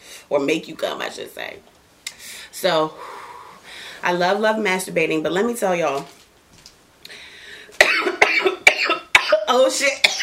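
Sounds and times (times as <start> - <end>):
speech: 0.3 - 1.8, 2.6 - 3.1, 4.0 - 6.2, 9.5 - 10.2
harsh coughing fit after smoking: 7.8 - 10.2.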